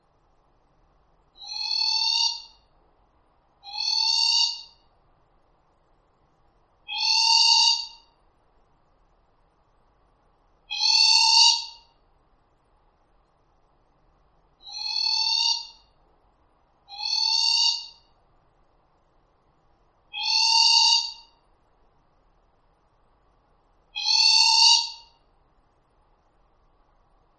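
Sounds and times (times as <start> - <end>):
ruru morepork owl calling: 1.4 - 2.6, 3.6 - 4.8, 6.9 - 8.1, 10.7 - 11.9, 14.6 - 15.9, 16.9 - 18.1, 20.1 - 21.4, 23.9 - 25.2.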